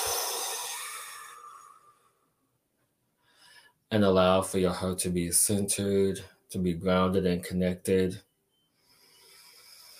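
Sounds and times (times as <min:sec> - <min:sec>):
deep breath exhale: 0:00.0 - 0:02.2, 0:08.8 - 0:09.9
speech: 0:03.9 - 0:08.3.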